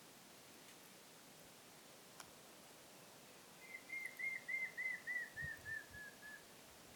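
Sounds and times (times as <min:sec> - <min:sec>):
faint rustle: 0:00.4 - 0:03.6
Montezuma quail Cyrtonyx montezumae tremulous whistle call: 0:03.6 - 0:06.5.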